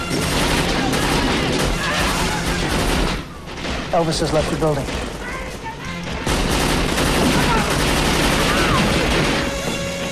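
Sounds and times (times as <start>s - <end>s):
gunfire from pistols and rifles aboard a ship: 0.0s - 10.0s
speech: 3.9s - 5.0s.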